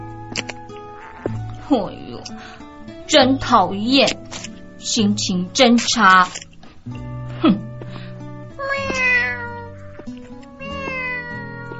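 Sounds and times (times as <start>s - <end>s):
speech: 0.3s - 0.6s, 1.7s - 7.6s
cat meowing: 8.6s - 9.8s, 10.6s - 11.7s.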